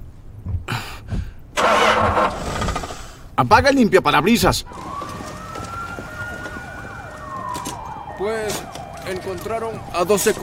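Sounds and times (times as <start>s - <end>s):
car engine cranking and failing to start: 1.6s - 3.4s, 4.5s - 10.4s
speech: 3.4s - 5.0s, 8.2s - 10.4s.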